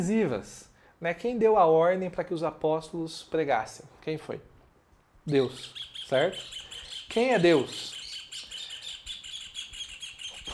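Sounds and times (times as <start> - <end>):
speech: 0.0 - 4.5, 5.3 - 8.0
several songbirds chirping and trilling: 5.3 - 10.5.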